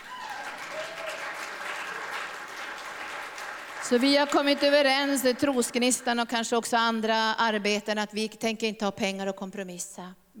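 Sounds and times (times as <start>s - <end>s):
crowd applauding: 0.0s - 6.2s
speech: 3.9s - 10.3s.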